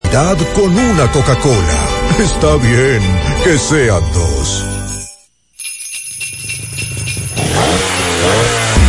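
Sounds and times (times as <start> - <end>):
speech: 0.1 - 4.7
engine starting up and revving: 7.3 - 8.8.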